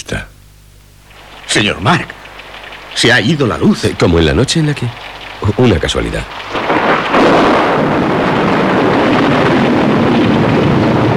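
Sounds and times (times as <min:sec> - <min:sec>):
speech: 0:00.0 - 0:00.3, 0:01.5 - 0:02.2, 0:03.0 - 0:06.7
strong storm wind roaring: 0:06.3 - 0:11.1.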